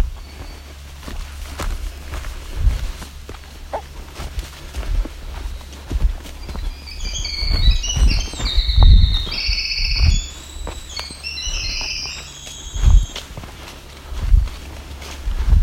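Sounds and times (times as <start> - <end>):
footsteps of person walking a trail: 0.0 - 15.6
male Winter Wren singing near an escarpment edge: 5.3 - 13.2.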